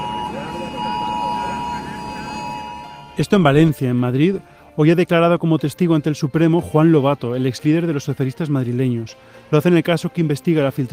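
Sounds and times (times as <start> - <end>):
murmur of a protest crowd: 0.0 - 3.4
electronic flood emergency alert tone from many mobile phones at a protest: 0.0 - 3.8
speech: 3.2 - 10.9.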